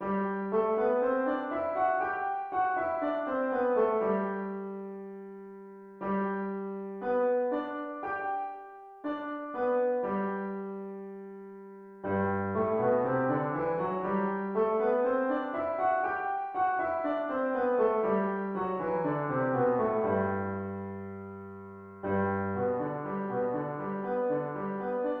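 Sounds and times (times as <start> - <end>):
piano playing in G major: 0.0 - 25.1.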